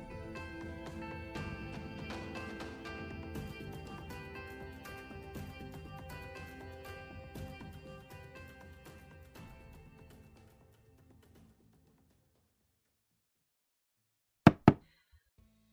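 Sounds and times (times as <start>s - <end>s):
soft music: 0.0s - 10.2s
knocks on a door: 14.5s - 14.8s.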